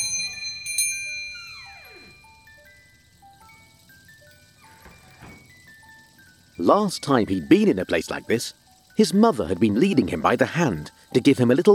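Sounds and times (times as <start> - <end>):
shop door bell tinkling: 0.0 - 11.7
soft plinking chime melody: 0.0 - 11.7
speech: 6.6 - 11.7.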